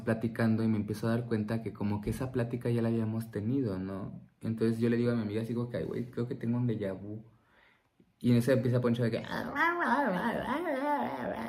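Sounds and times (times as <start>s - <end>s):
speech: 0.0s - 7.3s, 8.2s - 11.4s
person imitating a dog whimpering: 9.2s - 11.4s.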